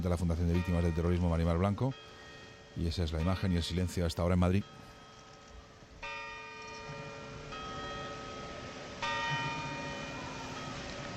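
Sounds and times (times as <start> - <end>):
speech: 0.0 - 2.2, 2.8 - 4.9
church bells ringing: 0.0 - 11.1.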